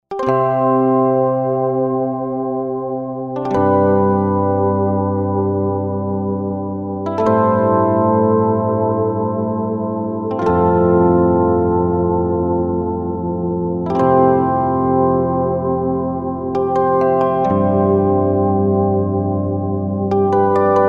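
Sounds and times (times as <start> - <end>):
mono Rhodes electric piano: 0.1 - 20.8.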